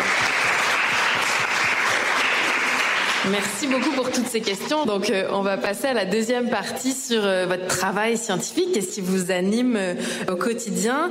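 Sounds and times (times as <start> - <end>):
audience applause at a live talk: 0.0 - 4.4
speech: 3.2 - 11.0.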